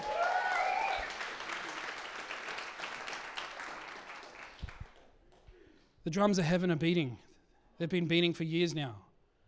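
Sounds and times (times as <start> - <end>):
high cheer: 0.0 - 2.0
audience applause: 0.0 - 5.1
speech: 6.0 - 9.1.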